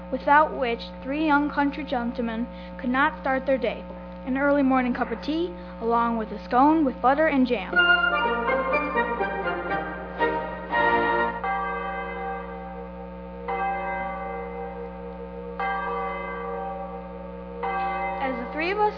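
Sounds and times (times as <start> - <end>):
speech: 0.1 - 8.4
church bell tolling a funeral knell: 7.8 - 18.9.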